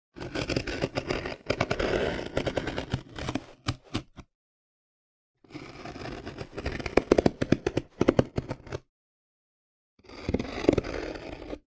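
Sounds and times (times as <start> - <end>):
cardboard being cut: 0.2 - 4.2, 5.5 - 8.8, 10.1 - 11.6.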